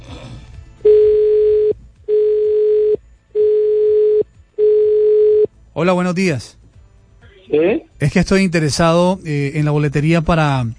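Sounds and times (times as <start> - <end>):
telephone call line tone beeps: 0.9 - 5.5
speech: 5.8 - 6.6, 7.5 - 10.7.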